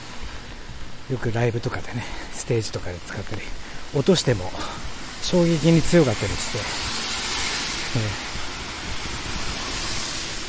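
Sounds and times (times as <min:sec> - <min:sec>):
car traffic roar from outside: 0:00.0 - 0:10.4
speech: 0:01.1 - 0:07.0, 0:07.9 - 0:08.2.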